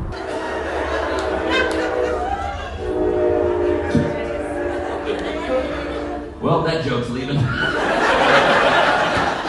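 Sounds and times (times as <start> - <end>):
train horn blaring in long sustained tones: 0.0 - 7.2
train rumbling past on tracks in Centralia: 0.0 - 9.4
laughter: 0.2 - 6.2, 7.4 - 9.4
speech: 6.6 - 7.9.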